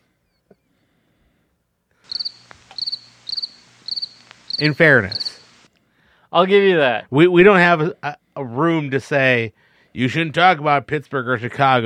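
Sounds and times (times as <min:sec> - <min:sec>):
crickets chirping: 0:02.0 - 0:05.7
speech: 0:04.6 - 0:05.2, 0:06.3 - 0:11.8.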